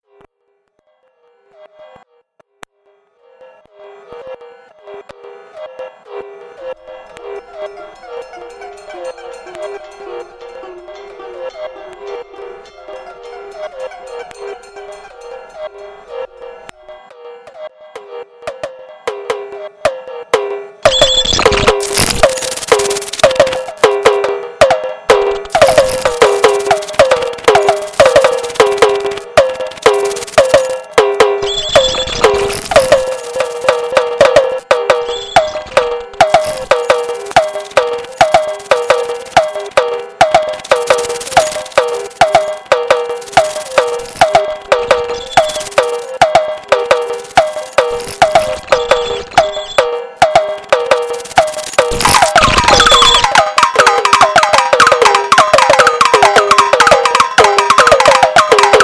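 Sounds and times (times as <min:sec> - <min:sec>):
drums outside: 0:18.5 - 0:58.8.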